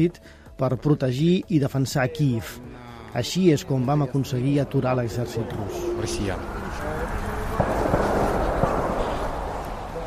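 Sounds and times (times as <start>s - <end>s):
speech: 0.0s - 6.6s
voices: 2.0s - 10.0s
outdoor background rumble: 4.0s - 10.0s
distant gunshots: 7.3s - 10.0s.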